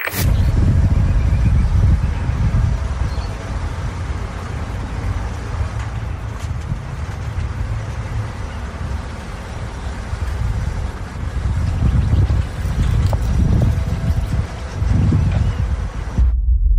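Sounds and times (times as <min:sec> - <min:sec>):
light outdoor wind blowing: 0:00.2 - 0:16.6.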